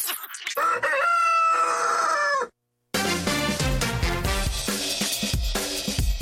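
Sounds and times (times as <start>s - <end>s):
rooster crowing: 0.6s - 2.6s
upbeat music: 3.0s - 6.1s.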